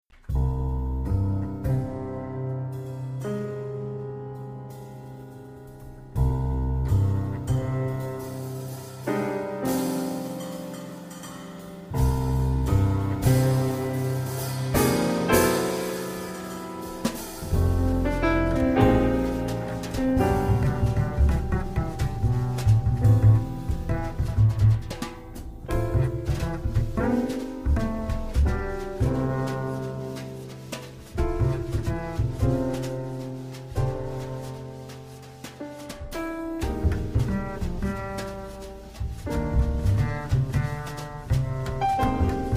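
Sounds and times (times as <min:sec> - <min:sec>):
bass melody: 0:00.2 - 0:42.5.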